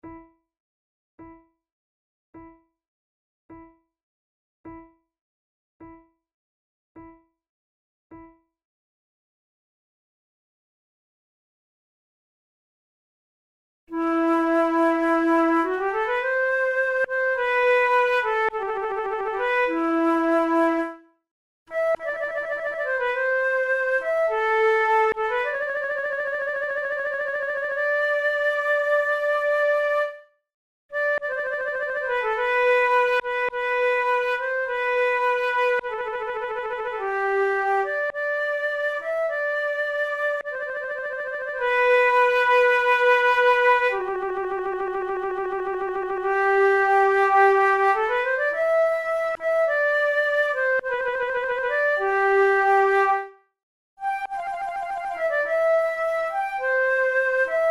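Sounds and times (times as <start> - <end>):
grave flute duet: 13.9 - 21.1, 21.7 - 30.3, 30.9 - 53.4, 54.0 - 57.6.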